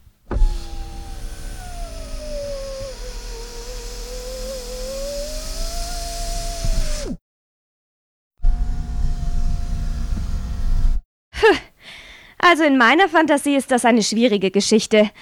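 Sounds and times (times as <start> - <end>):
electric car window motor whirring: 0.2 - 7.2, 8.4 - 11.0
speech: 12.5 - 15.2.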